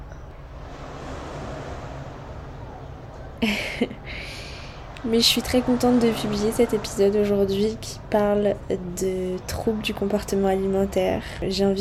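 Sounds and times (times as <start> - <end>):
ocean surf heard from a hotel overlooking the sea: 0.4 - 8.1
speech: 3.4 - 11.7.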